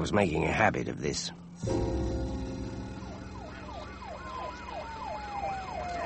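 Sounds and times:
speech: 0.0 - 2.3
low rumble of traffic: 0.0 - 6.0
emergency vehicle siren wailing: 1.6 - 6.0.

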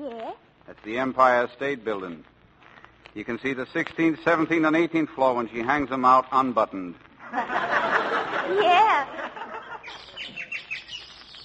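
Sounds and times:
speech: 0.8 - 2.3, 3.2 - 9.2
laughter: 7.2 - 10.6
bird singing high chirps: 9.5 - 11.4.

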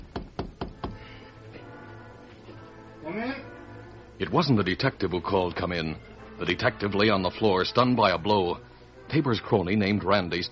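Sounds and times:
knocking on a hotel room door: 0.0 - 1.0
speech: 3.0 - 3.5, 4.2 - 10.5.

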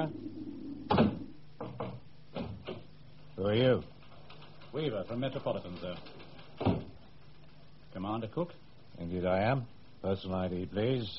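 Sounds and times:
speech: 0.0 - 0.2, 3.4 - 4.0, 4.7 - 6.7, 7.9 - 11.1
door shutting with a heavy thud: 0.9 - 2.9.

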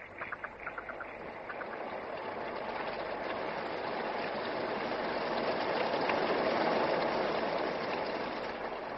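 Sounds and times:
heavy rain falling: 0.1 - 8.9.

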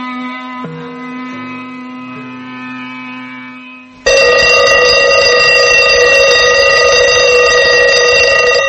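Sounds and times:
mechanical alarm clock bell ringing: 4.1 - 8.6.

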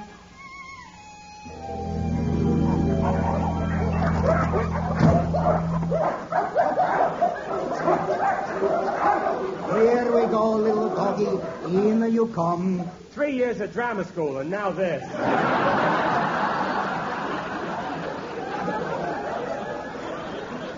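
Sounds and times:
dog whining: 0.5 - 9.5
dogs barking and yipping in an office: 1.9 - 12.0
laughter: 2.3 - 11.7, 15.0 - 20.7
speech: 13.6 - 16.2.

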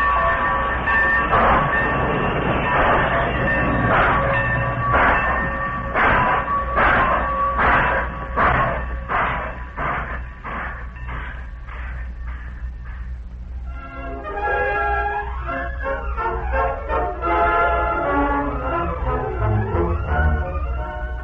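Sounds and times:
continuous train rumble: 0.0 - 21.2
train chugging pulling out of station: 0.0 - 21.2.

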